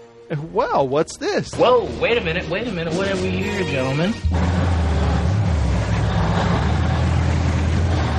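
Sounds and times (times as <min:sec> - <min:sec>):
speech: 0:00.3 - 0:04.7
police RV deep engine drone in film scene: 0:01.5 - 0:08.1
police RV road noise: 0:01.6 - 0:08.1.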